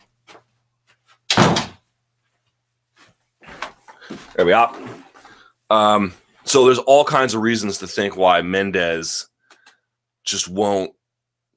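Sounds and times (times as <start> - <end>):
door swinging shut with a heavy thud: 1.3 - 1.8
speech: 4.2 - 5.0, 5.7 - 9.3, 10.3 - 11.0.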